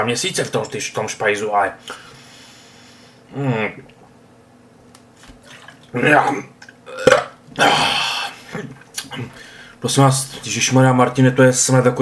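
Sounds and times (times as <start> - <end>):
speech: 0.0 - 2.1, 3.3 - 4.0, 5.9 - 6.5, 8.6 - 12.0
person choking and spluttering on sauerkraut juice: 5.4 - 9.3
strained throaty gag: 5.9 - 9.3.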